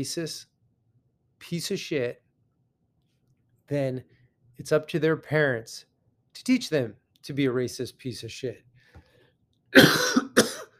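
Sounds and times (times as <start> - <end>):
speech: 0.0 - 0.5, 1.4 - 2.2, 3.7 - 8.7, 9.7 - 10.2
harsh coughs: 9.8 - 10.7.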